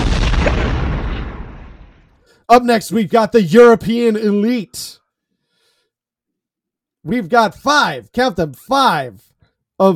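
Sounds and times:
loud booming explosion sound effect: 0.0s - 2.2s
speech: 2.5s - 5.0s, 7.0s - 9.9s.

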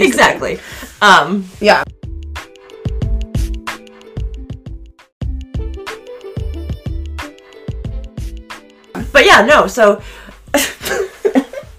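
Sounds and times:
speech: 0.0s - 2.0s, 9.2s - 11.1s
person coughing: 10.6s - 11.6s.

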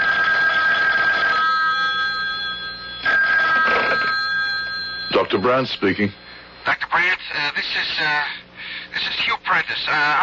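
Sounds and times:
telephone ringing over the line of a call from a public phone: 0.0s - 6.8s
speech: 5.3s - 8.4s, 9.0s - 10.2s.

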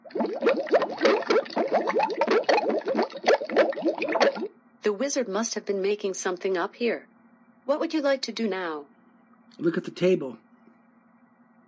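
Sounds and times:
thick hot liquid bubbling in a cauldron: 0.0s - 4.5s
speech: 4.9s - 7.1s, 7.7s - 8.9s, 9.5s - 10.4s.

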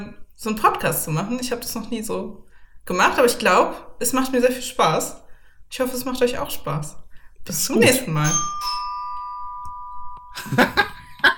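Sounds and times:
speech: 0.0s - 8.8s, 10.4s - 11.3s
electronic doorbell chime: 8.2s - 11.2s
laughter: 10.4s - 11.3s.

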